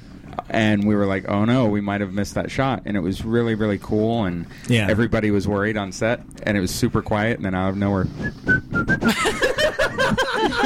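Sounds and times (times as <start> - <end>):
speech: 0.6 - 9.4
person whistling a quick little tune: 8.1 - 9.2
laughter: 9.0 - 10.6.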